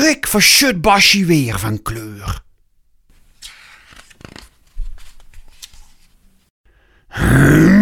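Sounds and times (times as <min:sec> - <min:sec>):
speech: 0:00.1 - 0:02.4, 0:07.2 - 0:07.7
quiet rustling and crinkling: 0:03.1 - 0:06.5
tiger roaring as it leaps out of a bush: 0:07.1 - 0:07.7.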